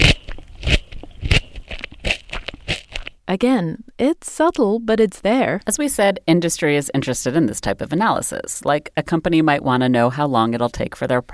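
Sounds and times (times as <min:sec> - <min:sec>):
biting into a crunchy raw carrot: 0:00.0 - 0:03.2
speech: 0:03.3 - 0:11.3.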